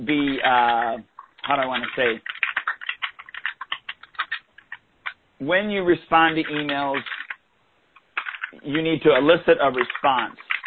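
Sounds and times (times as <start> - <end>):
speech: 0.0 - 2.4, 5.4 - 7.2, 8.5 - 10.4
typing on a computer keyboard: 0.0 - 5.2, 5.8 - 7.4, 8.0 - 10.6.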